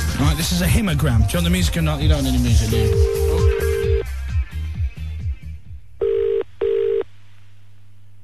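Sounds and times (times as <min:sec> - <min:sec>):
speech: 0:00.2 - 0:03.4
telephone double ringing tone on a phone-in call: 0:02.8 - 0:04.0, 0:06.0 - 0:07.1
telephone dialing tones on a phone-in call: 0:06.0 - 0:07.0.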